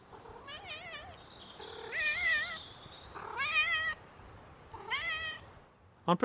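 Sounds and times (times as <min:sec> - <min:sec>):
cat meowing: 0:00.2 - 0:04.0, 0:04.7 - 0:05.5
speech: 0:06.1 - 0:06.2.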